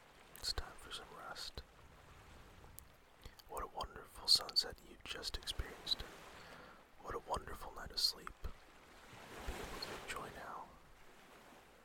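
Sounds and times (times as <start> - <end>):
cool breeze after sunset: 0.0 - 1.7, 3.1 - 8.6, 9.2 - 10.9
ocean waves: 0.0 - 11.8.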